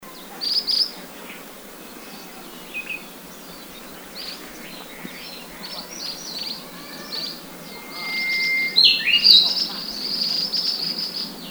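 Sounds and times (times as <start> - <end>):
Ashy Minivet Pericrocotus divaricatus group calling in Guangxi: 0.0 - 11.5.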